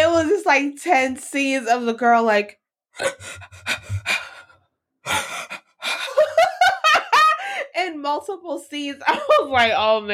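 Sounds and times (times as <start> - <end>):
speech: 0.4 - 4.2, 5.0 - 6.4, 7.8 - 10.1
person imitating a girl's sharp breathy gasps and voiced squeaks: 3.0 - 6.2
laughter: 5.1 - 7.6.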